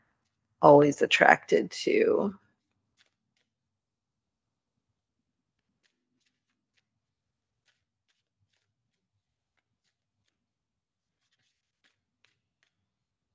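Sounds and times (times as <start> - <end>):
speech: 0.6 - 2.4
tarot cards being shuffled: 2.6 - 3.6, 5.5 - 12.8.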